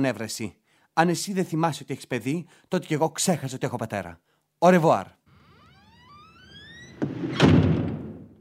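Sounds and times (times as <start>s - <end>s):
speech: 0.0s - 5.2s
door hinges creaking: 5.3s - 8.3s.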